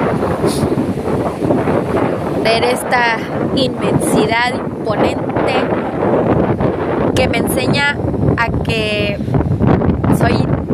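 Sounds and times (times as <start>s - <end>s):
loud wind roaring across the microphone at a beach in Cancún: 0.0s - 10.7s
low rumble of open-sea surf at a beach in Cancún: 0.0s - 10.7s
speech: 2.7s - 6.4s, 7.2s - 10.7s.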